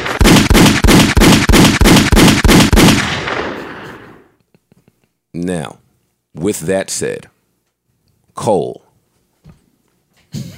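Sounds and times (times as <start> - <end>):
rapid volley of gunshots: 0.0 - 4.2
speech: 5.4 - 7.4, 8.4 - 8.8.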